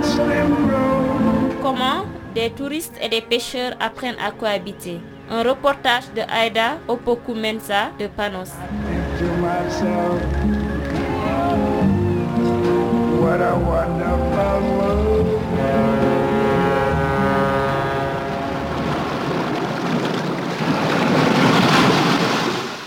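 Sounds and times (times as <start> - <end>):
tonal sounds: 0.0 - 20.5
speech: 1.7 - 10.6
surf of waves washing onto a beach on the coast of Saint Lucia: 18.2 - 22.8.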